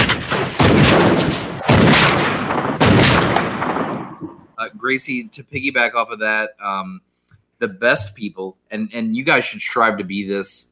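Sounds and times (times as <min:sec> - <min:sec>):
gunshot sound effect blasts: 0:00.0 - 0:04.6
speech: 0:04.6 - 0:10.6.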